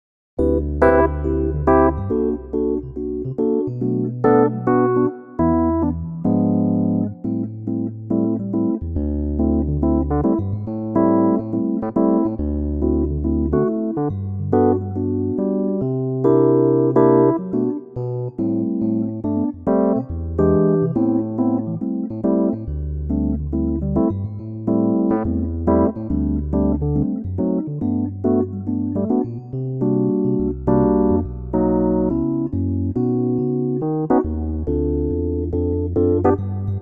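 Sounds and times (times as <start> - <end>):
electric piano in G: 0.4 - 36.8.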